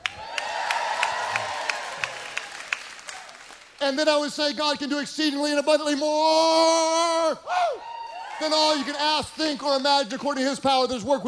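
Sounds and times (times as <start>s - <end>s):
audience cheering: 0.0s - 3.8s, 7.5s - 9.4s
crowd applauding: 0.0s - 4.0s
speech: 3.8s - 11.2s.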